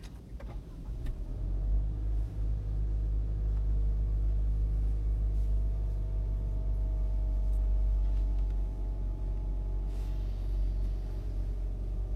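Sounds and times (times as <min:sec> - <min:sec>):
car engine humming from inside the vehicle: 0:00.0 - 0:12.1.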